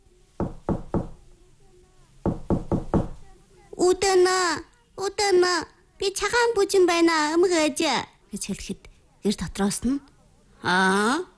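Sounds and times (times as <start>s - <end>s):
hand knocking on the door of a wooden ger: 0.4s - 1.2s, 2.2s - 3.2s
speech: 3.8s - 11.3s.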